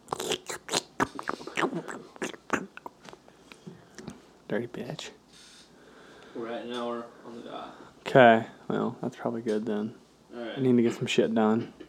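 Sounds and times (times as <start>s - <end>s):
crunchy chewing with mouth noises: 0.0s - 3.2s
speech: 4.5s - 5.2s, 6.4s - 11.8s.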